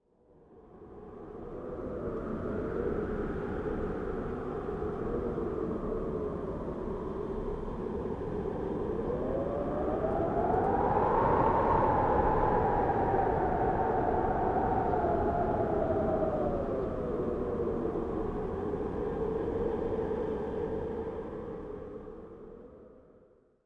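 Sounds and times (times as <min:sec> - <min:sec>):
horror wind ambience: 0:00.4 - 0:23.2.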